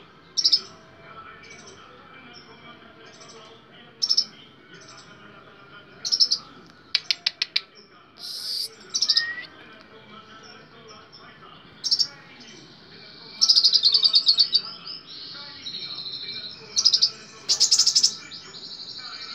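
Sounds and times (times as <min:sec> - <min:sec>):
small bird chirping: 0:00.3 - 0:00.8, 0:04.0 - 0:05.1, 0:06.0 - 0:09.5, 0:11.8 - 0:12.2, 0:13.4 - 0:19.3.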